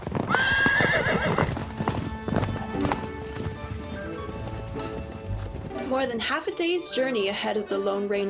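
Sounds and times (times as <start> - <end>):
horse hoofbeats clip-clopping on hard ground at a walking pace: 0.0 - 7.9
horse whinnying loudly and shrilly: 0.2 - 3.7
speech: 6.0 - 8.2.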